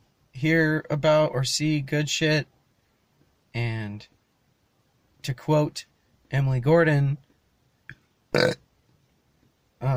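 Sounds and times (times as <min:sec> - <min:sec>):
speech: 0:00.4 - 0:02.6, 0:03.6 - 0:04.2, 0:05.2 - 0:07.2, 0:08.4 - 0:08.6, 0:09.8 - 0:09.9
person burping: 0:08.3 - 0:08.6.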